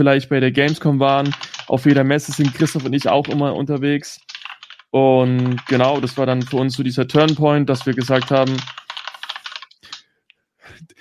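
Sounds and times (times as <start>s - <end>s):
speech: 0.0s - 4.3s, 4.9s - 8.8s
typing on a computer keyboard: 0.7s - 3.6s, 4.2s - 10.0s.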